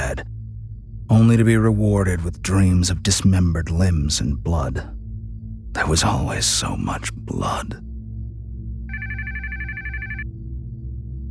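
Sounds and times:
speech: 0:01.1 - 0:05.0, 0:05.8 - 0:07.9
telephone ringing with an electronic trill: 0:08.9 - 0:10.3.

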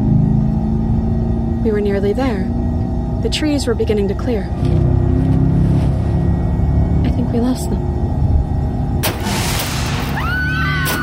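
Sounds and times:
grinding rumble: 0:00.0 - 0:11.0
speech: 0:01.6 - 0:02.6, 0:03.2 - 0:04.8, 0:07.3 - 0:07.9
heavy impact: 0:08.9 - 0:11.0
metal crunching as car is struck: 0:09.0 - 0:11.0.

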